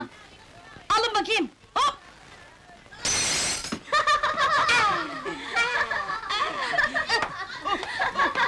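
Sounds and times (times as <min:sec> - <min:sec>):
speech: 0:01.2 - 0:01.9
glass window shattering: 0:03.0 - 0:03.9
people laughing excitedly: 0:03.8 - 0:08.4.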